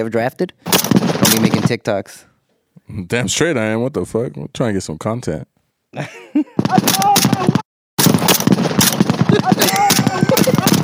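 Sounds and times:
speech: 0.0 - 2.3, 2.9 - 7.5
rapid gunfire from a war video playing back: 0.7 - 1.8, 6.6 - 10.8
laughter: 5.9 - 7.6, 9.3 - 10.8.

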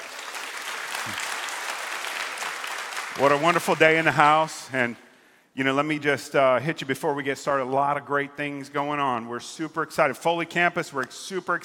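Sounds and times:
large group clapping hands: 0.0 - 4.5
speech: 3.2 - 5.0, 5.6 - 11.6.

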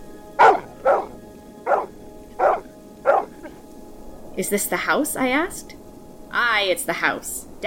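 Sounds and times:
large dog barking furiously: 0.4 - 3.6
speech: 4.4 - 7.6.

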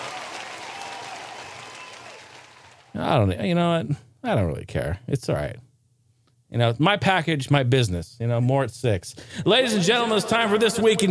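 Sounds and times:
crowd applause: 0.0 - 2.9
speech: 3.0 - 5.7, 6.5 - 11.0.

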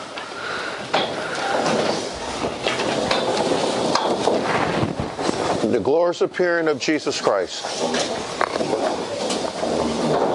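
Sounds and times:
many chairs scraping and thumping across a hard floor: 1.1 - 5.8, 7.4 - 10.3
speech: 5.7 - 8.5.

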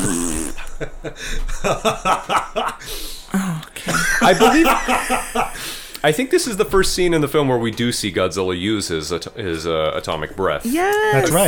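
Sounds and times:
person blowing a sputtering raspberry imitating a fart: 0.0 - 0.7
person chuckling: 0.0 - 2.4, 3.5 - 5.6
speech: 0.8 - 11.4.

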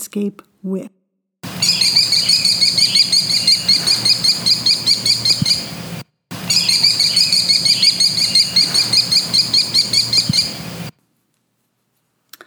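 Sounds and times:
speech: 0.1 - 1.0
American kestrel calling: 1.4 - 10.9.

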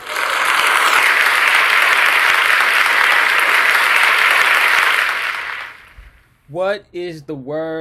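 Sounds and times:
crowd applauding: 0.0 - 6.2
speech: 6.6 - 7.8.

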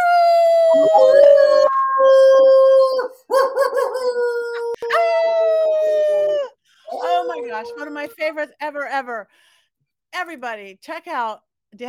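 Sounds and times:
several people howling in imitation of wolves: 0.0 - 8.1
speech: 7.6 - 11.8.

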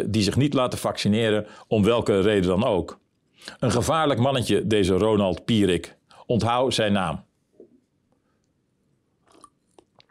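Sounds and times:
speech: 0.0 - 7.3
person sipping a drink: 9.2 - 10.0
swallow: 9.2 - 10.0
wet mouth clicks: 9.2 - 10.0.

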